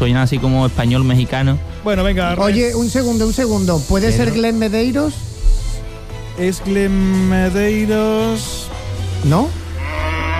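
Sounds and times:
speech: 0.0 - 5.3, 6.4 - 9.6
cow moo sound effect marking a wrong answer in a quiz game: 9.8 - 10.3.

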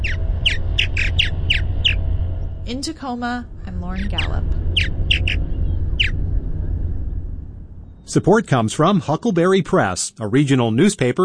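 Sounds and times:
purple martin calls: 0.0 - 2.6, 3.8 - 6.2
low outdoor rumble: 0.0 - 11.2
speech: 2.7 - 4.6, 8.1 - 11.2.

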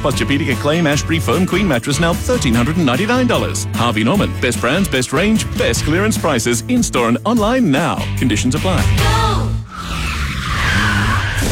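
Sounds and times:
speech: 0.0 - 9.5
car tyres on worn low-tread rubber skidding: 9.6 - 11.5.

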